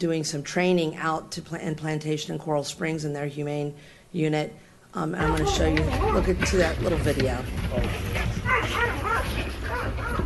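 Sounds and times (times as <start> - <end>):
speech: 0.0 - 10.2
dogs barking and yelping in a noisy space: 5.2 - 6.5, 8.4 - 10.2.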